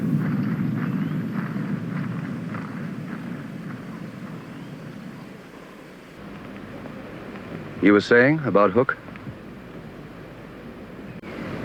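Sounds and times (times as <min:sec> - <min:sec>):
low roll of thunder: 0:00.0 - 0:06.2
deep steady rumble of a train on rails: 0:00.0 - 0:11.6
speech: 0:07.8 - 0:09.1.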